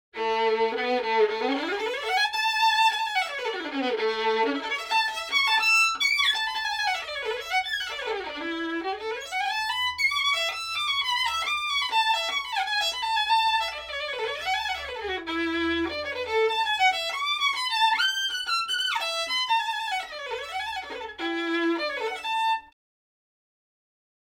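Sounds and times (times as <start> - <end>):
violin solo: 0.2 - 22.8.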